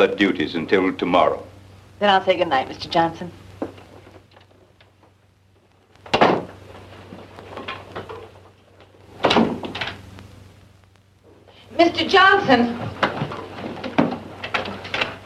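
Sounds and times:
speech: 0.0 - 3.4, 11.8 - 13.0
bedroom door pushed shut with a solid thud and rattle: 6.1 - 6.6, 9.2 - 9.8.

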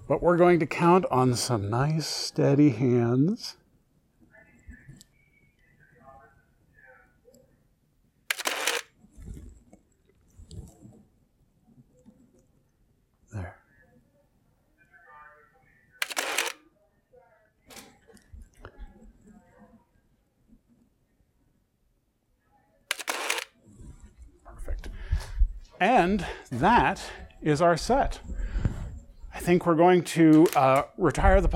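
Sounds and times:
speech: 0.1 - 3.6, 25.8 - 28.5, 29.4 - 31.5
film camera with f3.5 lens shutter clicking: 8.3 - 8.9, 16.0 - 16.6, 22.9 - 23.5, 30.4 - 30.8.

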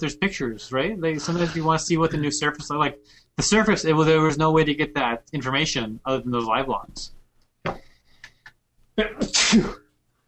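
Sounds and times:
speech: 0.0 - 7.8, 9.0 - 9.8
person sneezing: 9.0 - 9.8.

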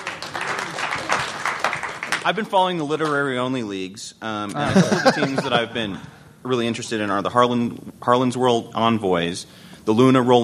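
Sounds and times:
applause: 0.0 - 2.4
speech: 2.2 - 10.4
laughter: 4.5 - 6.0.

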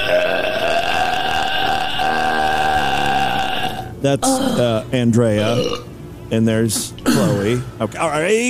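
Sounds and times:
woman burping loudly: 0.0 - 4.8, 5.5 - 5.8, 7.0 - 7.5
speech: 4.0 - 8.4.

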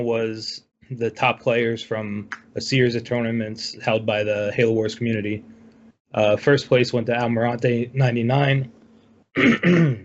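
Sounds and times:
speech: 0.0 - 8.8, 9.4 - 10.0
man clearing throat: 9.4 - 10.0.

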